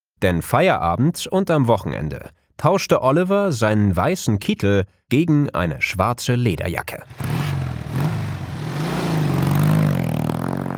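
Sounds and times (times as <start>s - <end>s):
speech: 0.2s - 8.1s
two-cylinder motorcycle engine revving: 7.0s - 10.7s.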